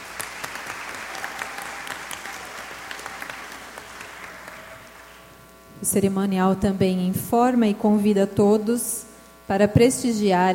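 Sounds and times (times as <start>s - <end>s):
crowd applauding an arriving guest in a large room: 0.0s - 5.3s
speech: 5.8s - 10.5s.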